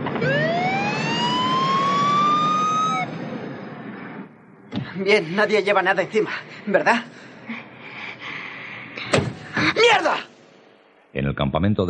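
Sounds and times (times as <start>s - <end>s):
police patrol car siren wailing: 0.0s - 3.3s
police patrol car engine rumbling: 0.0s - 4.9s
traffic noise: 0.0s - 7.8s
speech: 5.0s - 7.3s, 9.7s - 10.3s, 11.1s - 11.8s.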